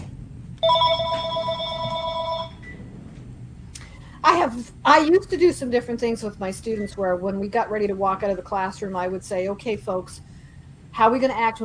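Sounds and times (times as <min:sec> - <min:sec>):
low steady hum: 0:00.0 - 0:11.6
mobile phone ringtone: 0:00.6 - 0:02.6
speech: 0:04.2 - 0:10.3, 0:11.0 - 0:11.6.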